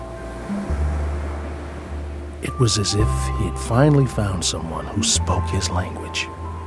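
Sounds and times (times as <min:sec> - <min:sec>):
ocean surf waves on a beach: 0:00.0 - 0:05.1
speech: 0:02.6 - 0:06.4.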